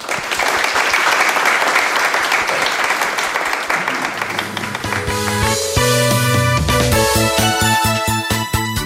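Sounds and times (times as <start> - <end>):
crowd applauding after a company investor relations presentation: 0.0 - 6.8
upbeat music: 4.4 - 8.8.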